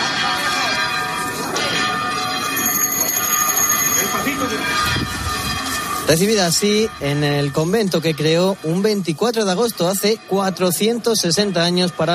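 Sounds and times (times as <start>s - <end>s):
crowd murmur and voices: 0.0s - 6.0s
church bells pealing: 0.0s - 12.1s
speech: 6.1s - 12.1s.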